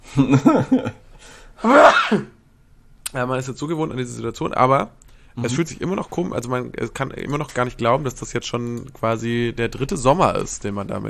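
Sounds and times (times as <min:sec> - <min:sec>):
speech: 0:00.2 - 0:01.0, 0:01.6 - 0:02.4, 0:03.1 - 0:11.0
person sneezing loudly after a breathy wind-up: 0:01.6 - 0:02.4.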